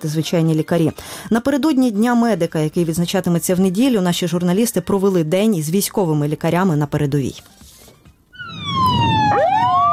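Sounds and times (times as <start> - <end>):
speech: 0.0 - 7.6
ambulance siren wailing: 8.3 - 9.9.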